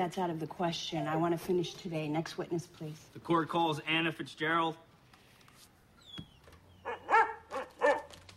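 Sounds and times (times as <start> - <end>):
speech: 0.0 - 4.9
dog barking short strained barks: 6.8 - 8.3.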